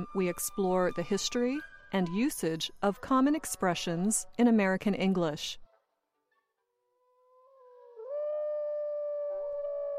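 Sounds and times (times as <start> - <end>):
speech: 0.0 - 5.6
wolf howling: 6.9 - 9.9.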